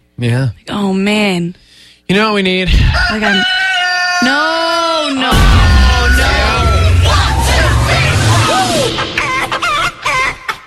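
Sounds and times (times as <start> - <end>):
speech: 0.2 - 3.6, 4.2 - 5.6
rooster crowing in a barnyard: 2.9 - 8.9
steady low rumble: 5.3 - 10.0.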